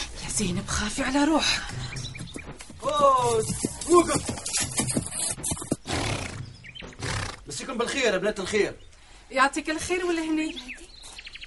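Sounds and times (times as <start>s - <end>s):
speech: 0.4s - 2.0s, 2.8s - 4.4s, 7.7s - 10.8s
horse snorting and whinnying: 4.2s - 7.5s.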